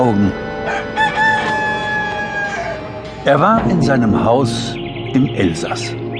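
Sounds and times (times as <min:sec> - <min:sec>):
speech: 0:00.0 - 0:01.0, 0:03.2 - 0:06.0
rooster crowing: 0:00.5 - 0:03.0.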